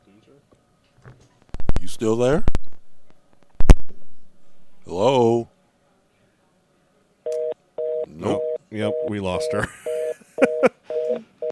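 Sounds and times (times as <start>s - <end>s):
speech: 0.3s - 2.6s, 5.0s - 5.4s, 9.1s - 10.7s
old-style landline phone ringtone beeps: 7.3s - 11.5s
laughter: 9.6s - 11.3s.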